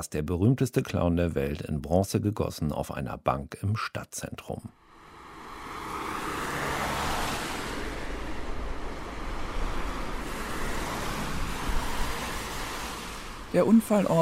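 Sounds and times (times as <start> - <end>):
speech: 0.0 - 4.8, 13.5 - 14.1
dense traffic rushing over a five-lane bridge: 4.8 - 14.1.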